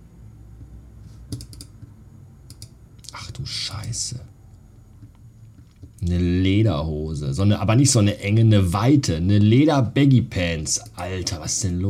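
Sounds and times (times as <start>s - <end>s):
soft room hum: 0.0s - 11.8s
computer mouse clicks: 1.3s - 1.9s, 2.5s - 3.2s
speech: 3.4s - 4.4s, 6.0s - 11.8s.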